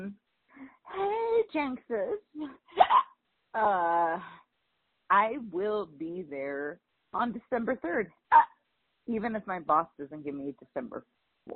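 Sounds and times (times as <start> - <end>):
speech: 1.5 - 2.6, 3.6 - 4.4, 5.1 - 8.5, 9.1 - 11.5
person hiccuping: 2.5 - 3.2, 8.3 - 8.6.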